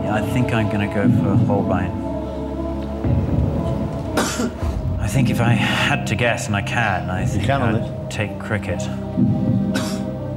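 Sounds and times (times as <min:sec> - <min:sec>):
speech: 0:00.2 - 0:02.1, 0:03.0 - 0:03.4, 0:04.3 - 0:09.8
person coughing as a signal during a quiz: 0:04.2 - 0:04.7, 0:09.8 - 0:10.1.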